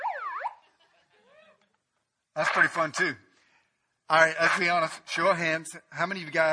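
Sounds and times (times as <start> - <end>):
megaphone siren electronic wail: 0.0 - 0.6
laughter: 0.6 - 1.8
speech: 2.4 - 3.2, 4.1 - 6.5.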